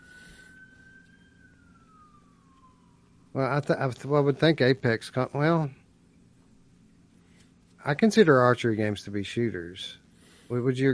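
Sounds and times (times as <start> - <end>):
emergency vehicle siren wailing: 0.0 - 7.1
low rumbling background of traffic: 0.0 - 10.9
speech: 3.4 - 5.8, 7.8 - 10.9.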